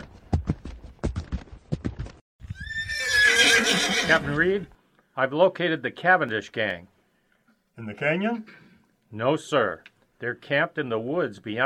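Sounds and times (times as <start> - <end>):
horse hooves clip-clopping as a rider arrives: 0.0 - 2.9
horse giving a shrill rising whinny: 2.4 - 4.6
speech: 4.1 - 6.9, 7.8 - 11.6.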